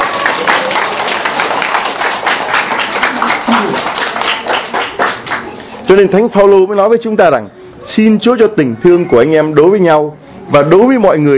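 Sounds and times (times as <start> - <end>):
crowd applauding: 0.0 - 6.0
speech: 5.9 - 11.3.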